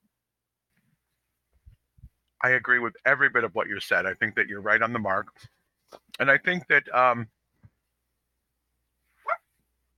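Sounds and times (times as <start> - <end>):
speech: 2.4 - 7.4
dog barking at home: 9.2 - 9.5.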